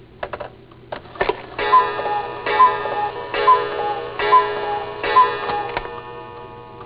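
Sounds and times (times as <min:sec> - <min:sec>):
cuckoo clock: 0:01.5 - 0:06.8.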